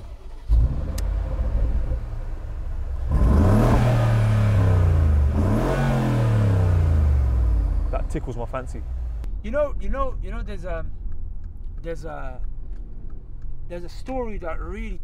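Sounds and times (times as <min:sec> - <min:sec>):
5.5-litre car engine idling and revving: 0:00.0 - 0:10.4
speech: 0:08.1 - 0:11.0, 0:11.8 - 0:12.5, 0:13.7 - 0:15.0.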